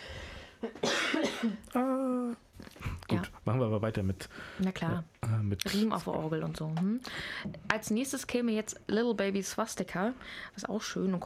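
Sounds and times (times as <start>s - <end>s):
short husky adult coughs: 0.8s - 1.6s
speech: 1.4s - 1.9s, 3.5s - 11.2s.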